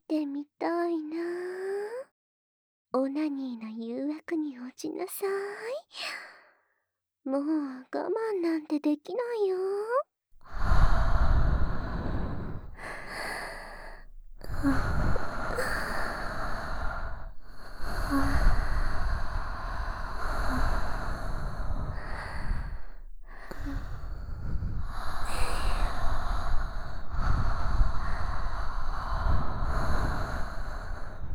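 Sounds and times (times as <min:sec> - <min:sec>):
speech: 0:00.1 - 0:01.6, 0:02.9 - 0:06.3, 0:07.2 - 0:10.0, 0:14.6 - 0:14.9
warm breath blown against the microphone: 0:10.4 - 0:31.3.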